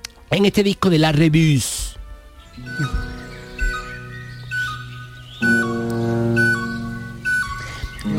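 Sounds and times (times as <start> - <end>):
low sustained accompaniment: 0.0 - 8.1
soft recorded birdsong: 0.0 - 8.1
speech: 0.3 - 1.9
flute imitating birds on a record: 2.4 - 8.1.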